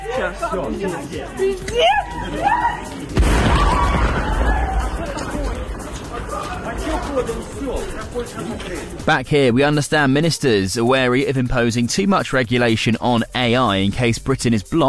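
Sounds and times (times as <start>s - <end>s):
people murmuring and calling out on a railway station platform: 0.0s - 11.5s
speech: 0.2s - 3.9s, 6.3s - 14.8s
explosion heard from a railway platform: 3.2s - 5.8s.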